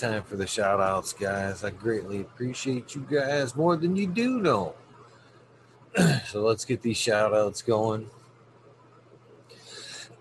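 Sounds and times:
speech: 0:00.0 - 0:04.8, 0:05.9 - 0:08.2
faint low hum: 0:00.0 - 0:10.1
raspy throat clearing: 0:06.0 - 0:06.4.

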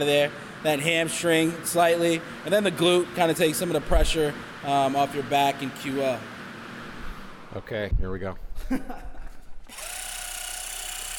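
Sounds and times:
speech: 0:00.0 - 0:06.4, 0:07.6 - 0:09.1
percussive massage gun buzzing used on the quads: 0:09.7 - 0:11.1.

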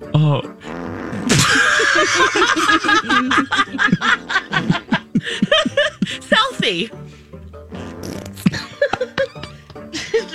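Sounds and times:
speech: 0:00.0 - 0:01.4, 0:02.0 - 0:04.2
farting: 0:00.5 - 0:01.5, 0:04.1 - 0:05.0, 0:07.7 - 0:08.6
laughter: 0:01.3 - 0:06.6, 0:08.4 - 0:10.3.

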